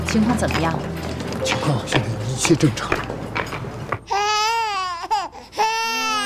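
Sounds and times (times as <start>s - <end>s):
speech: 0.1s - 3.0s
child crying in loud wavering wails: 4.1s - 6.2s.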